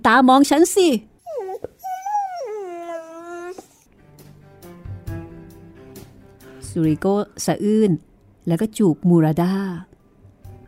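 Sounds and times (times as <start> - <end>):
speech: 0.0 - 1.1, 6.8 - 9.9
dog whimpering: 1.2 - 3.9.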